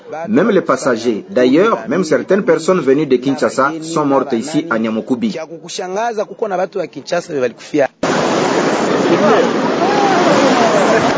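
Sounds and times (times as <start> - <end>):
speech: 0.1 - 8.1, 8.7 - 9.9
flooded river rushing: 8.0 - 11.1.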